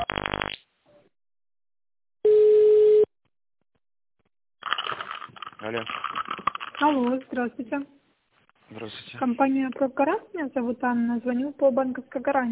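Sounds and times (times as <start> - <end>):
phone line ringing while a call is transferred: 2.3 - 3.1
speech: 6.9 - 8.0, 8.7 - 12.5.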